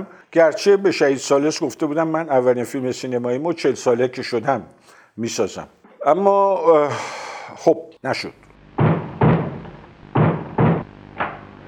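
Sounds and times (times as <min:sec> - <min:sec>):
speech: 0:00.0 - 0:08.9
knocking on a door with shoes: 0:08.8 - 0:10.9.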